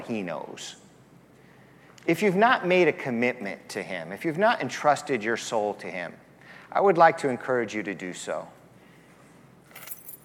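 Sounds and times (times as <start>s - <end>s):
speech: 0.0s - 0.8s, 2.0s - 8.6s
keys jangling: 9.6s - 10.2s.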